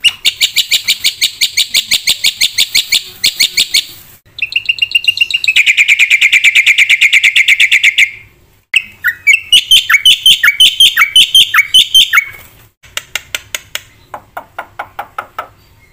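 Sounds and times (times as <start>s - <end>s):
black-winged myna song with fast rattle and whistled squeaky notes: 0.0s - 12.4s.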